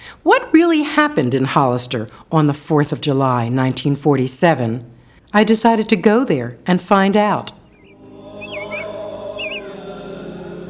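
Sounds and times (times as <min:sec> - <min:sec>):
speech: 0:00.2 - 0:07.6
droning town hum: 0:07.5 - 0:09.8
short whistled bird chirps in town streets: 0:07.6 - 0:09.7.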